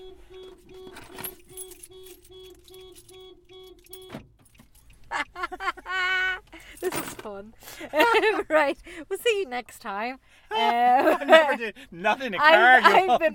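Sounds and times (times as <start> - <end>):
keys jangling: 0.8 - 5.1
laughter: 5.1 - 6.5, 7.7 - 8.7, 10.5 - 11.7
speech: 7.4 - 13.3.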